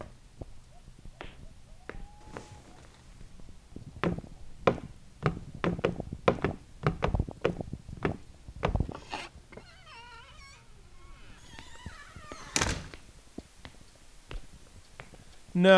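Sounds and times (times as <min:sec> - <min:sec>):
footsteps: 0:00.0 - 0:15.6
front door creaking: 0:02.0 - 0:03.0, 0:08.0 - 0:13.1
front door shutting with a solid thud: 0:10.0 - 0:13.0
speech: 0:15.6 - 0:15.7.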